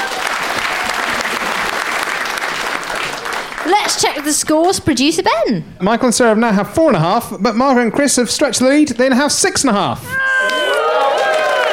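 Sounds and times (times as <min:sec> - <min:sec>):
audience applause: 0:00.0 - 0:04.7, 0:10.4 - 0:11.7
speech: 0:03.7 - 0:10.3.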